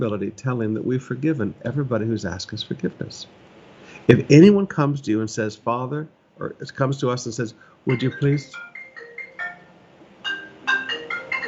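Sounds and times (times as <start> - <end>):
speech: 0.0 - 3.4, 4.0 - 8.7
mobile phone ringtone: 7.9 - 11.4.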